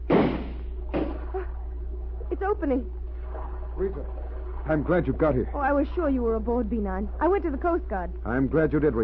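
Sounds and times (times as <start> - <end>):
gunshots blasting a door lock open: 0.0 - 1.3
low steady hum: 0.0 - 9.0
speech: 2.4 - 3.0, 3.8 - 9.0.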